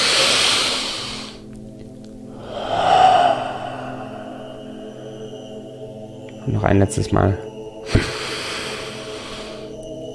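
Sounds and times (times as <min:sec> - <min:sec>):
deep inhale through the nose during a guided breathing exercise: 0:00.0 - 0:01.6, 0:02.3 - 0:05.2, 0:07.9 - 0:09.8
speech: 0:06.5 - 0:08.1.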